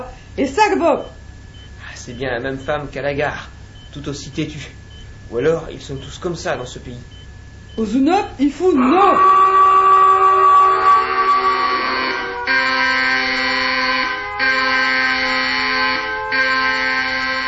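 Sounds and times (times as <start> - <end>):
speech: 0.4 - 1.2, 2.0 - 7.2, 7.8 - 9.4
alarm ringing in long harsh blasts: 0.7 - 3.2, 3.8 - 17.4.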